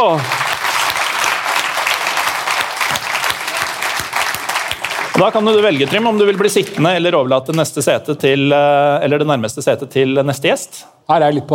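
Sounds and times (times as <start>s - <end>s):
speech: 0.0s - 0.4s, 5.2s - 11.5s
audience applause welcoming a guest: 0.0s - 7.0s.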